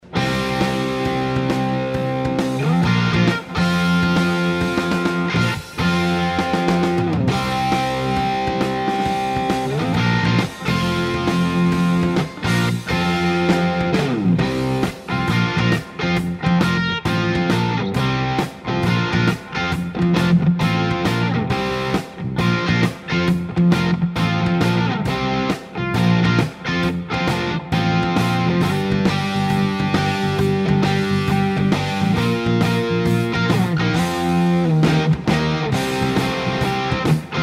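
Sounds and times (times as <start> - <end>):
guitar through Modtone Dirty Duo overdrive: 0.0 - 37.4.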